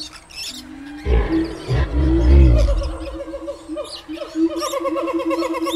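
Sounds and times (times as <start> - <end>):
chorus of repeated harmonic animal calls: 0.7 - 5.7
big cat roaring in a zoo: 1.1 - 3.6
bird-like cries: 1.1 - 3.8.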